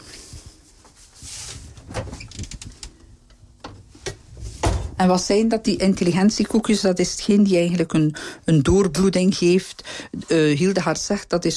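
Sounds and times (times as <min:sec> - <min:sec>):
rustling of items handled inside a refrigerator: 0:00.0 - 0:03.0
refrigerator door opening and closing with seal whoosh: 0:01.7 - 0:02.9, 0:04.4 - 0:05.0
speech: 0:05.0 - 0:11.5.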